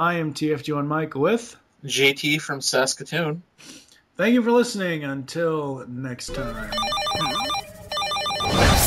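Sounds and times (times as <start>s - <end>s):
speech: 0.0s - 7.5s
electronic telephone ringtone: 6.4s - 8.7s.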